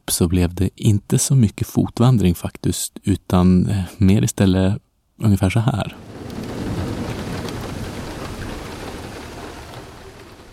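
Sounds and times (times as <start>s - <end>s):
speech: 0.1s - 6.1s
heavy rain in the mountains of the Kazbegi region in Georgia: 5.7s - 10.5s
deep rumble of thunder in the mountains of the Kazbegi region: 5.8s - 10.5s.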